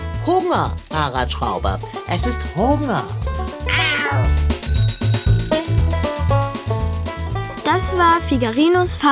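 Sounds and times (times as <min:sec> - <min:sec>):
bass-heavy musical accompaniment: 0:00.0 - 0:09.1
speech: 0:00.2 - 0:04.5, 0:07.8 - 0:09.1
tomcat meowing: 0:03.7 - 0:04.5.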